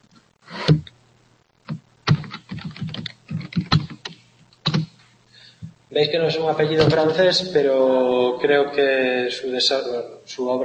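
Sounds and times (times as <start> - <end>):
speech: 0.7 - 1.0, 6.0 - 10.6
keystrokes on a computer keyboard as a name is typed: 1.7 - 4.9.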